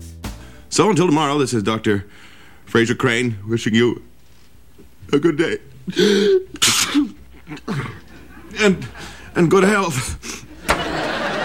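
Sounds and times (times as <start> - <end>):
speech: 0.8 - 4.1, 5.1 - 7.9, 8.6 - 10.4
person coughing harshly: 5.9 - 9.2
laughter: 7.3 - 9.4, 10.4 - 11.4.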